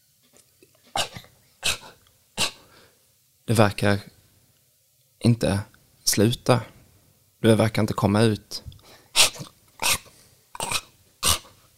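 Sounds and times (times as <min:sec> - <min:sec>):
cat hacking and retching up a hairball: 0:00.9 - 0:02.7, 0:09.1 - 0:11.6
speech: 0:03.5 - 0:04.1, 0:05.2 - 0:06.8, 0:07.4 - 0:08.7.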